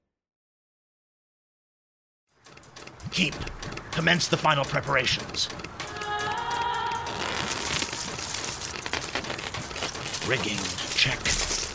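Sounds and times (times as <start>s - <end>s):
steady rain pattering outside a workshop with a foliage roof: 3.0s - 11.7s
speech: 3.2s - 6.0s, 10.3s - 11.5s.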